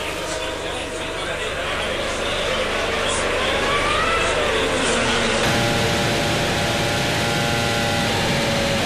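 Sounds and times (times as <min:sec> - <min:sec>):
Formula One car accelerating out of the pit lane on slick tyres: 0:00.2 - 0:08.8
continuous mechanical noise: 0:05.4 - 0:08.8.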